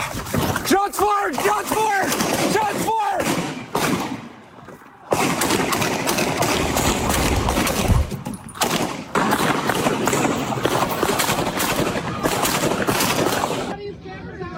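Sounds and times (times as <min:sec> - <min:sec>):
rustling and jostling movement of a body-worn camera: 0:00.0 - 0:13.7
rapid crackling gunfire bursts captured on a body-worn camera: 0:00.0 - 0:13.8.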